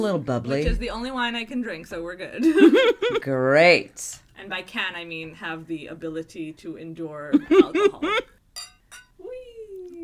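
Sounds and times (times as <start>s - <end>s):
speech: 0.0s - 8.4s
laughter: 2.4s - 3.2s, 7.3s - 8.3s
glasses of cava clinking in a toast: 8.6s - 9.2s.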